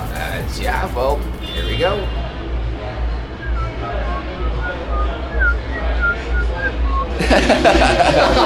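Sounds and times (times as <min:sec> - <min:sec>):
steady low rumble of traffic: 0:00.0 - 0:08.4
speech: 0:00.5 - 0:02.2, 0:07.3 - 0:08.4
person whistling a short tune: 0:03.4 - 0:07.2
laughter: 0:06.6 - 0:08.4.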